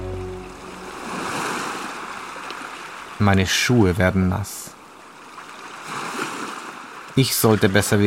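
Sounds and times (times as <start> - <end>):
shallow water of incoming Atlantic tide lapping over muddy riverbed: 0.8 - 3.2, 5.1 - 8.0
speech: 3.2 - 4.7, 7.2 - 8.0.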